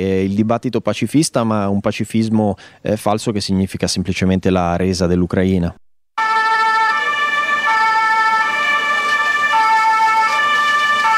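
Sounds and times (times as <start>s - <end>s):
speech: 0.0s - 6.3s
emergency sirens wailing at a farmers' protest: 6.2s - 11.1s
faint road traffic: 6.2s - 11.1s.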